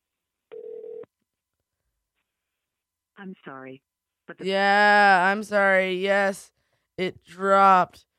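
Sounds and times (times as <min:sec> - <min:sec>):
electronic phone tone of an outgoing call ringing: 0:00.5 - 0:01.1
speech: 0:03.2 - 0:08.1.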